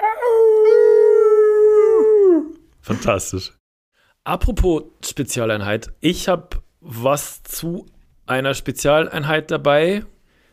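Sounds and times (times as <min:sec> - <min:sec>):
wolf howling: 0:00.0 - 0:02.6
speech: 0:02.9 - 0:03.6, 0:04.2 - 0:10.1.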